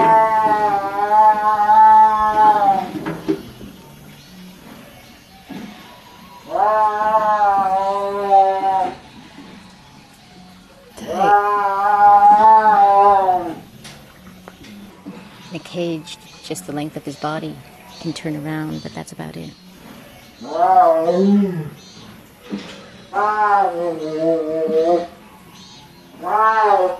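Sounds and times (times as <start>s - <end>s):
caged tiger under a tent yowling: 0.0s - 3.0s, 5.9s - 9.3s, 10.3s - 13.8s, 20.4s - 21.8s, 22.7s - 26.9s
speech: 16.0s - 19.6s, 20.4s - 21.8s, 23.2s - 25.1s, 26.2s - 26.9s.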